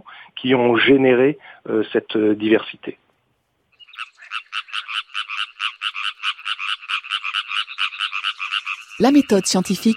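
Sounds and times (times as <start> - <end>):
speech: 0.4 - 3.0, 9.0 - 9.9
frog croaking: 3.7 - 9.9.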